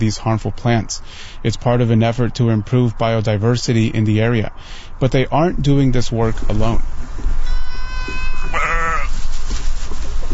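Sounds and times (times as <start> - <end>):
speech: 0.0 - 7.4
open-air hiss: 0.0 - 10.3
goats and sheep bleating outdoors while eating invasive plants and dry grass: 7.4 - 9.2.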